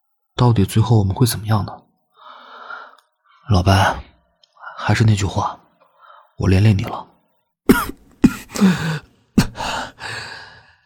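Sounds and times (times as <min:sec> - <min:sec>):
speech: 0:00.4 - 0:01.8, 0:03.5 - 0:04.1, 0:04.8 - 0:05.6, 0:06.4 - 0:07.1, 0:08.6 - 0:09.0
man coughing: 0:07.7 - 0:09.8
man's rasping breathy exhalations and sighing breaths: 0:08.2 - 0:10.8.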